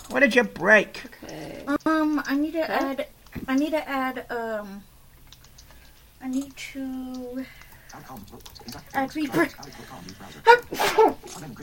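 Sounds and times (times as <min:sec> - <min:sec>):
soft noise: 0:00.0 - 0:11.6
speech: 0:00.1 - 0:04.9, 0:06.2 - 0:11.6
person sneezing: 0:10.7 - 0:11.2.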